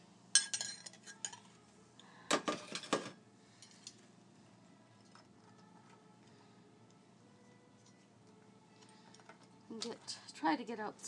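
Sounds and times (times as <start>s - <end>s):
spoon clinking against a bowl: 0.4s - 1.5s
speech: 9.8s - 11.0s.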